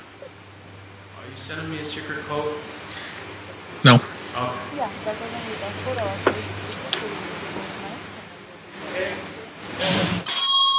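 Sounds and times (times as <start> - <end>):
voices: 0.0 - 10.2
speech: 1.3 - 2.8, 3.8 - 7.3
loud bell ringing: 10.2 - 10.7.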